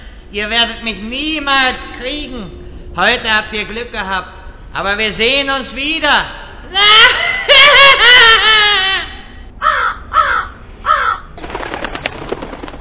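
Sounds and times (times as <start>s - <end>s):
speech: 0.3s - 8.8s
fluttering wingbeats of a crow taking off: 9.6s - 11.3s
crow cawing: 9.6s - 11.4s.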